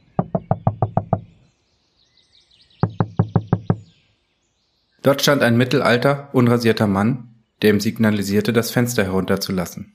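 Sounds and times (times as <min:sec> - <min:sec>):
faint birdsong: 0:00.0 - 0:09.9
knocking on a car's passenger door: 0:00.1 - 0:01.3, 0:02.8 - 0:03.9
speech: 0:05.0 - 0:09.9.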